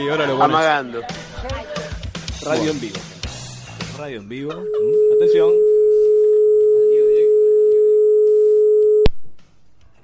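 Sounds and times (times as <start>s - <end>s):
speech: 0.0s - 1.8s, 2.4s - 3.1s, 4.0s - 5.7s
telephone line tone of a call not connecting: 4.6s - 9.1s.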